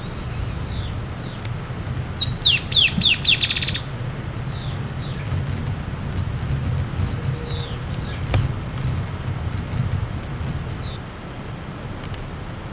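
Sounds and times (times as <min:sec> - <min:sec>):
Dusky-tailed antbird Drymophila malura calling: 0:00.0 - 0:01.4, 0:02.2 - 0:05.4, 0:07.1 - 0:08.3
low background rumble: 0:00.0 - 0:12.7.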